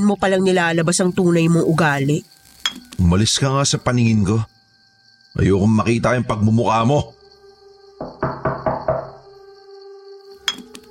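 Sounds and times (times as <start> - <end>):
speech: 0.0 - 4.5, 5.3 - 7.2
knocking on a wooden door: 8.0 - 9.3.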